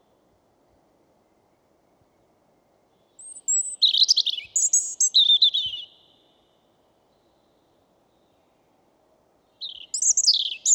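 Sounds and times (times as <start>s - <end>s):
European robin singing: 3.2s - 6.3s, 9.6s - 10.7s.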